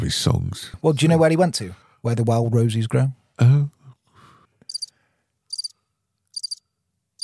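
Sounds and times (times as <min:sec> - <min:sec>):
speech: 0:00.0 - 0:03.8
pet lizard chirping in quick trains of high thin clicks: 0:04.7 - 0:04.9, 0:05.5 - 0:05.7, 0:06.3 - 0:06.6.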